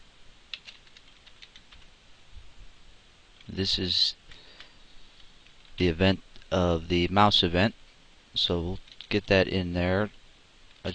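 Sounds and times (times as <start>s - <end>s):
typing code on a computer keyboard: 0.5s - 1.9s, 8.8s - 9.2s
speech: 3.5s - 4.2s, 5.8s - 7.8s, 8.4s - 10.2s.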